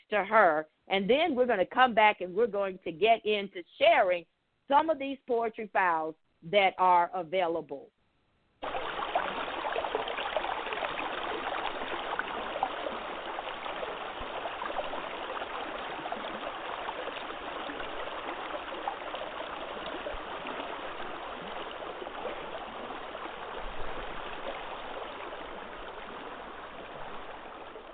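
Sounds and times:
speech: 0.1s - 8.0s
flowing river water: 8.6s - 27.9s.

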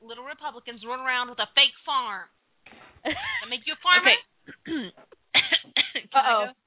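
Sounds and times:
speech: 0.3s - 2.4s, 3.0s - 6.6s
rough coughs: 4.4s - 6.1s.

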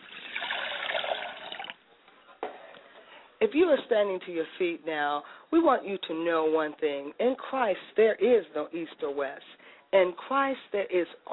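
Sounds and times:
liquid poured out as a libation: 0.0s - 1.8s
speech: 3.4s - 11.3s.

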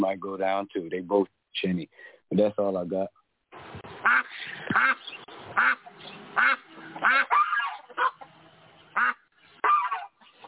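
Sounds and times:
speech: 0.0s - 5.0s
duck quacking loudly: 4.0s - 10.4s.

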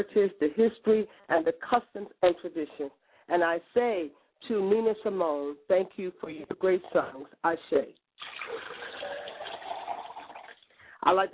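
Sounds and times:
speech: 0.0s - 8.8s, 11.0s - 11.3s
liquid poured out as a libation during a ceremony: 8.2s - 10.8s.

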